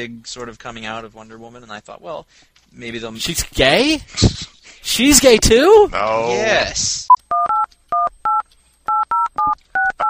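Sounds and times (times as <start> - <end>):
speech: 0.0 - 7.1
touch-tone telephone keypad dialing beeps: 7.3 - 10.0.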